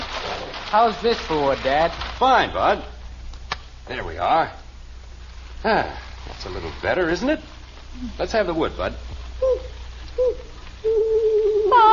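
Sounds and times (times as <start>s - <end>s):
faint low hum: 0.0s - 11.9s
speech: 0.7s - 2.9s, 3.9s - 4.6s, 5.6s - 11.0s
owl hooting: 9.4s - 11.9s.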